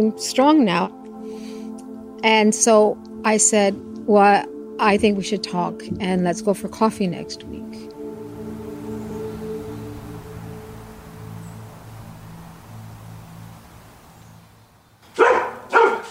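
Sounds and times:
speech: 0.0 - 1.0, 2.2 - 7.9
low steady hum with tonal layers: 0.0 - 15.0
dog barking: 15.1 - 16.1.

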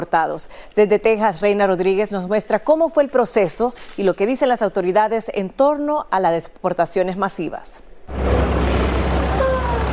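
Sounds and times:
speech: 0.1 - 8.5
bus engine rumbling at an airport in southern Texas: 8.1 - 9.9
faint high bus brake squeal: 8.1 - 9.9.

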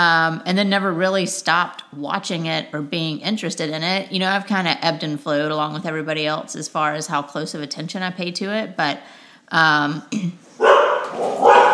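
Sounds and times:
speech: 0.0 - 11.7
female dog barking at people walking in the neighborhood: 10.6 - 11.7.

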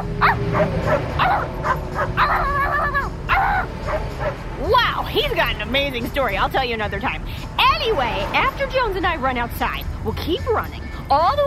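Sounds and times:
speech: 0.0 - 2.1, 5.1 - 11.4
low rumble: 0.0 - 11.4
dog barking at another dog in a pickup truck: 0.2 - 4.4.

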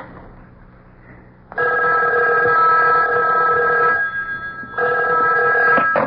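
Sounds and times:
telephone ringing the front desk: 1.5 - 6.0.

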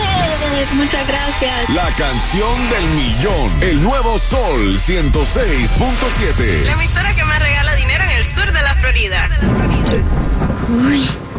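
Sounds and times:
speech: 0.7 - 11.2
deep rumbling thunder: 6.3 - 11.3.

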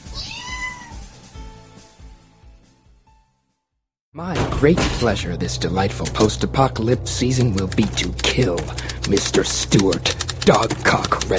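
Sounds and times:
cat meowing: 0.0 - 1.1
speech: 4.2 - 11.3.

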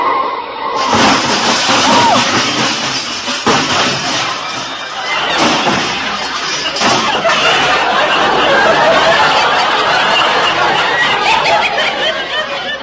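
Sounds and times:
crunching and scraping of a car crash: 0.8 - 10.3
car crash: 0.8 - 12.6
laughter: 0.8 - 12.8.

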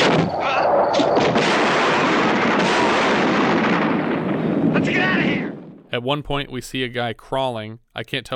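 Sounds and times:
bombardment of explosions in a field near a military firing range: 0.0 - 6.0
speech: 6.0 - 8.3.

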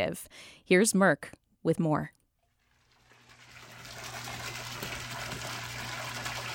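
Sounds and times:
speech: 0.0 - 2.2
water flowing in a giant koi fish pond in a driveway: 2.4 - 6.5.

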